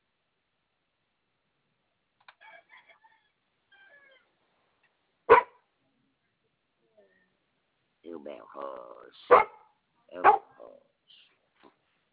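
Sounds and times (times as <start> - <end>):
dog barking: 5.3 - 5.6, 9.3 - 10.5
person talking: 8.0 - 9.4, 10.1 - 11.4.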